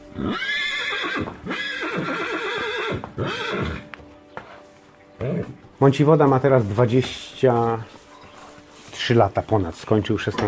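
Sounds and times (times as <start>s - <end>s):
horse hooves clopping on a hard surface: 0.0s - 10.4s
horse whinnying: 0.1s - 3.9s, 5.2s - 5.6s
speech: 5.8s - 8.0s, 9.1s - 10.4s.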